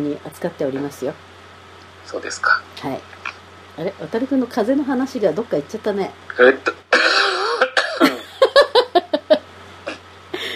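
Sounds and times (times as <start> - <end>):
speech: 0.0 - 1.3, 2.1 - 3.2, 3.8 - 6.8
person coughing: 6.9 - 8.2
voiced strained breathing: 10.4 - 10.5.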